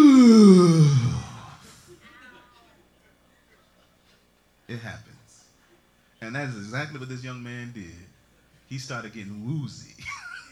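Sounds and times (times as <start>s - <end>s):
preacher in church imitating a loud yawn: 0.0s - 1.8s
speech: 6.3s - 8.1s, 8.7s - 10.2s.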